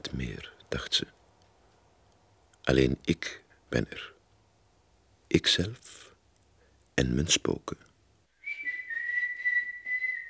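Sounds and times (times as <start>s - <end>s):
speech: 0.1s - 1.2s, 2.7s - 4.1s, 5.3s - 6.0s, 7.0s - 7.9s
woman whistling a simple tune: 8.4s - 10.2s.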